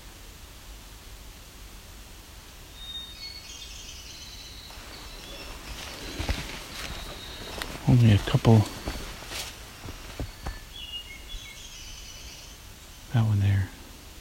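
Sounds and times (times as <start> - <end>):
steady outdoor hiss: 0.0 - 14.2
Nashville warbler singing: 2.7 - 13.8
speech: 7.9 - 8.8.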